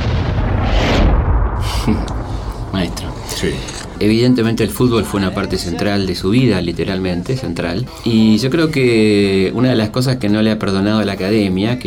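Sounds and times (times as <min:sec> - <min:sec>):
distant gunfire booms: 0:00.0 - 0:04.9
speech: 0:01.8 - 0:11.8.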